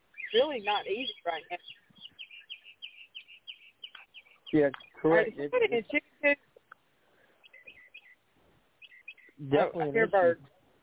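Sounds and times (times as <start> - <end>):
birds chirping in a tree outdoors: 0.0 - 10.5
speech: 0.3 - 1.8, 4.5 - 6.5, 9.4 - 10.5.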